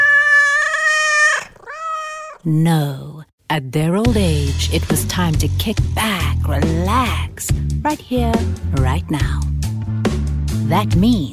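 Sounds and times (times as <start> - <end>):
cat meowing: 0.0 - 2.5
speech: 2.4 - 9.5, 10.6 - 11.3.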